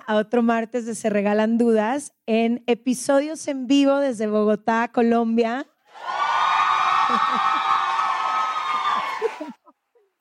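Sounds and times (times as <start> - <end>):
speech: 0.1 - 6.2, 7.1 - 7.7
live audience at a show in Bogotá Colombia cheering and whooping: 5.9 - 9.6
laughter: 6.8 - 9.8.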